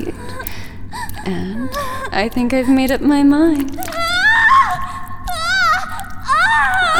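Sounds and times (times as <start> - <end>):
speech: 1.3 - 3.9
woman screaming in high quavering bursts: 5.4 - 6.9.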